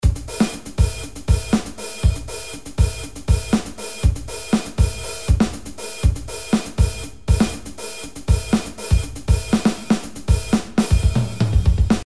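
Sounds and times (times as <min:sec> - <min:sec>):
16 beat drum beat: 0:00.0 - 0:12.0.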